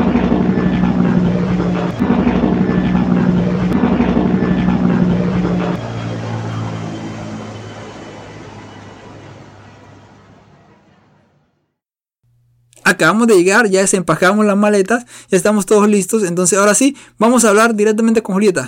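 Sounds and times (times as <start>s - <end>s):
airplane in flight with a steady loud engine drone: 0.0s - 11.8s
speech: 13.0s - 18.6s.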